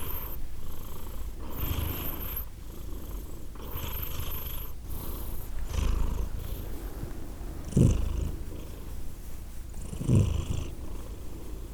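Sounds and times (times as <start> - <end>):
cat purring: 0.0 - 11.7.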